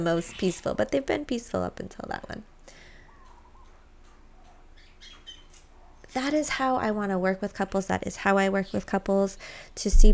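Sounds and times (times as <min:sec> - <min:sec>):
speech: 0:00.0 - 0:02.5, 0:06.1 - 0:10.1
steady low hum: 0:00.0 - 0:10.1
birds calling outdoors: 0:02.8 - 0:05.8.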